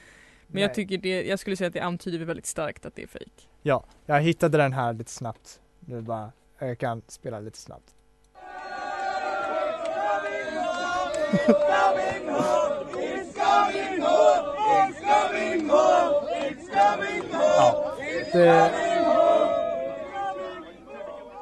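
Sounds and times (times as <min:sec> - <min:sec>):
speech: 0:00.5 - 0:08.0, 0:11.3 - 0:12.7, 0:13.5 - 0:18.9
laughter: 0:08.4 - 0:15.5
large crowd chanting a football song off-key: 0:08.4 - 0:21.4.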